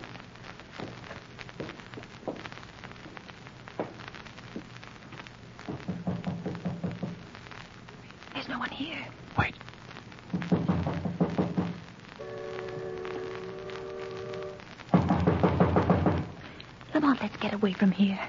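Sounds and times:
knocking on a door: 0:05.7 - 0:07.2, 0:10.3 - 0:11.8, 0:14.9 - 0:16.4
speech: 0:08.8 - 0:09.6, 0:17.4 - 0:18.2.

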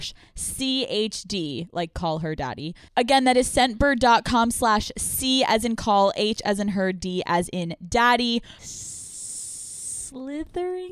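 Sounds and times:
speech: 0:00.0 - 0:08.9, 0:10.1 - 0:10.9
person imitating a snake hiss: 0:08.6 - 0:10.2.

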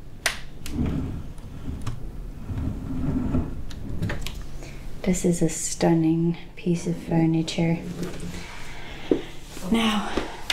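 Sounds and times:
wooden drawers of a furniture piece from Asia opening and closing: 0:00.7 - 0:04.4
speech: 0:05.0 - 0:08.3, 0:09.7 - 0:10.2.

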